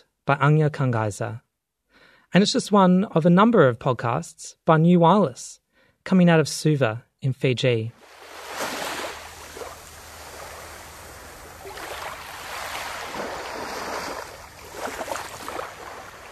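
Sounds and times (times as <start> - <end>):
speech: 0.0 - 1.4, 2.3 - 8.1
ocean waves washing and breaking: 8.0 - 16.2
low wind rumble: 9.1 - 16.2.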